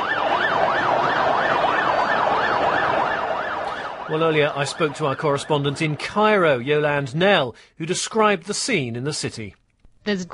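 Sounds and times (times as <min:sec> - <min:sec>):
street and traffic noise: 0:00.0 - 0:06.6
ambulance carrying the injured sounding its siren: 0:00.0 - 0:07.0
speech: 0:04.1 - 0:10.3.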